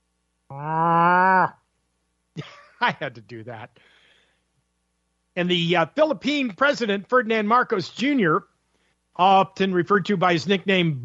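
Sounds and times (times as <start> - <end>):
cow mooing: 0.5 - 1.5
speech: 2.8 - 4.0, 5.4 - 8.5, 9.2 - 11.0.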